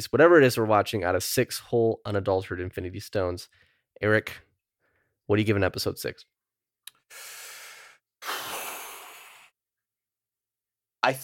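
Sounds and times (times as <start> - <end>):
speech: 0.0 - 4.5, 5.3 - 6.4, 7.1 - 7.4, 11.0 - 11.2
deep breath: 7.0 - 9.6.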